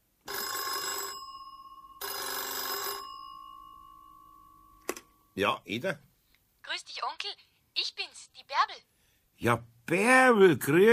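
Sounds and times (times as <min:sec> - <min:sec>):
telephone bell ringing with incoming call: 0:00.2 - 0:05.4
speech: 0:05.4 - 0:06.1, 0:09.4 - 0:10.9.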